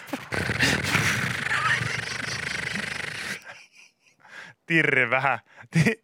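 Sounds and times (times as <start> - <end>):
voice imitating bicycle wheel flapper rattle: 0.0 - 3.6
breathy puffs: 0.0 - 4.6
speech: 4.7 - 6.0.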